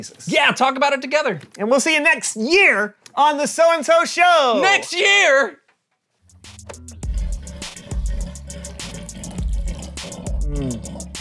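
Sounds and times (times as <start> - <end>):
speech: 0.0 - 5.6
voice imitating a clogged faucet with sputtering gurgling bursts: 7.1 - 11.2.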